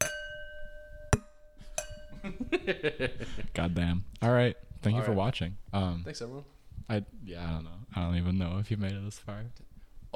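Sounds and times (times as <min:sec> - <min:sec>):
glasses clinking in a toast: 0:00.0 - 0:02.7
laughter: 0:02.2 - 0:03.6
speech: 0:02.2 - 0:10.1.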